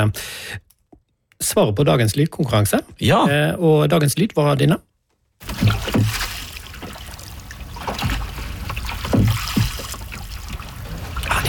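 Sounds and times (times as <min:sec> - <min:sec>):
speech: 0:00.0 - 0:00.7, 0:01.4 - 0:06.2
oars stroking through water rowing a boat: 0:05.4 - 0:11.4
swirling trickling water: 0:05.4 - 0:11.4.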